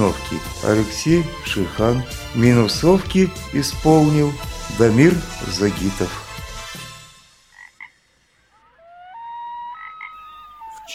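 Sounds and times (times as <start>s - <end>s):
speech: 0.0s - 6.2s
frogs croaking and trilling in a nighttime chorus: 7.3s - 10.9s.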